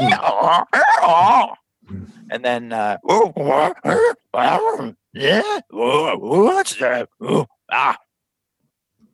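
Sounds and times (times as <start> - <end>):
man's voice imitating a braying donkey: 0.0 - 1.6, 2.8 - 8.1
speech: 0.5 - 8.0.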